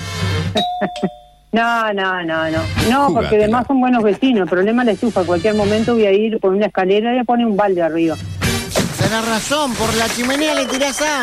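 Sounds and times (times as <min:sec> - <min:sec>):
speech: 0:00.5 - 0:08.3, 0:09.0 - 0:11.2
electronic doorbell ring: 0:00.6 - 0:01.5.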